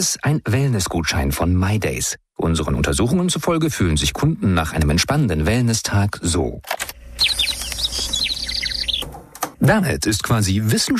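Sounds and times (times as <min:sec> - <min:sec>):
speech: 0:00.0 - 0:07.5, 0:09.6 - 0:10.9
hum: 0:06.8 - 0:10.4
robin singing: 0:07.1 - 0:09.1.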